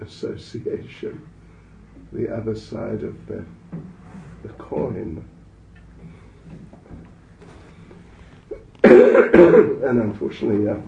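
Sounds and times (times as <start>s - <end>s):
speech: 0.0s - 1.4s, 2.1s - 5.4s, 8.9s - 10.8s
person coughing: 8.5s - 9.8s.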